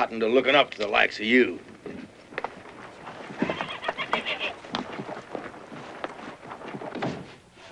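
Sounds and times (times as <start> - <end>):
speech: 0.0 - 1.8
hoof clops: 1.6 - 7.6
horse whinnying: 3.3 - 4.6.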